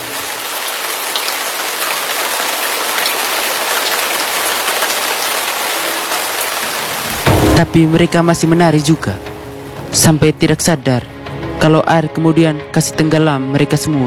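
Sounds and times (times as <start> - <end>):
heavy rain falling: 0.0 - 10.8
speech: 7.6 - 9.3, 9.9 - 14.0.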